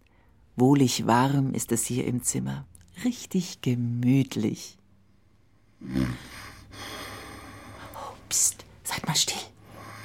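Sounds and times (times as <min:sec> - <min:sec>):
speech: 0:00.6 - 0:04.8, 0:05.8 - 0:06.9, 0:08.3 - 0:09.5
low rumbling snore with breathy rasp: 0:05.8 - 0:07.8.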